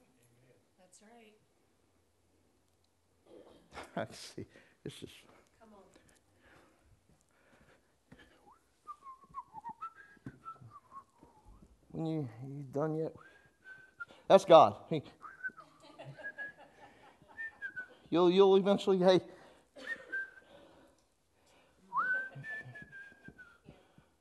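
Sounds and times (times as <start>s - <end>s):
speech: 3.3s - 5.4s, 11.9s - 13.3s, 14.3s - 15.2s, 18.1s - 19.4s
person whistling a tune: 8.4s - 11.7s, 13.2s - 14.2s, 15.2s - 15.6s, 16.2s - 16.6s, 17.4s - 18.1s, 19.8s - 20.4s, 21.9s - 24.0s
laughter: 15.6s - 17.6s, 22.0s - 22.9s.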